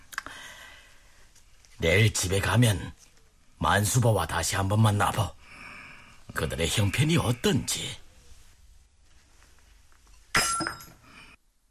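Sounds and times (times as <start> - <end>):
speech: 1.8 - 3.0, 3.6 - 5.4, 6.3 - 8.0
wine cup falling and clanging on a hard floor: 10.3 - 11.0.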